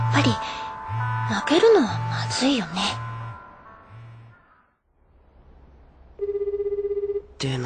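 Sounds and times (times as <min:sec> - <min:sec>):
speech: 0:00.2 - 0:00.6, 0:01.3 - 0:03.0, 0:07.4 - 0:07.6
lost mobile phone ringing: 0:06.2 - 0:07.3.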